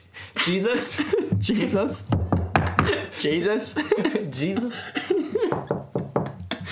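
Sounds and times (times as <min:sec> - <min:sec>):
laughter: 0:00.4 - 0:02.0, 0:02.8 - 0:06.6
speech: 0:00.4 - 0:02.2, 0:02.9 - 0:05.7
sharp knocks on a hard surface: 0:01.3 - 0:03.0, 0:05.4 - 0:06.6.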